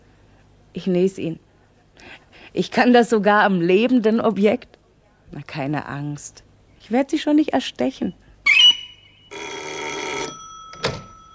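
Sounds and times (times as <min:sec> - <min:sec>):
speech: 0:00.7 - 0:08.2
electric telephone bell ringing in a sewing workshop: 0:09.2 - 0:11.3.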